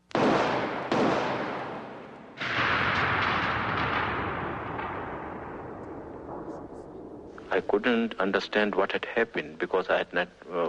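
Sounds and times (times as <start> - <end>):
gunshots from a small revolver: 0.1 - 7.7
speech: 7.6 - 10.6.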